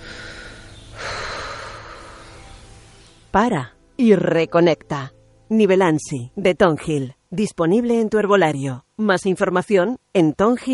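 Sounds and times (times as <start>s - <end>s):
deep breath in: 0.0s - 2.4s
speech: 3.3s - 10.7s.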